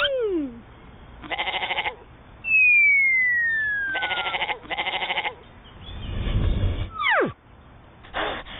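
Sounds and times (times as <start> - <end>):
horned goat bleating after a goat fight: 1.2 - 2.0, 3.9 - 5.4
electronic sweeping chirp tones: 2.4 - 4.3, 5.9 - 7.4.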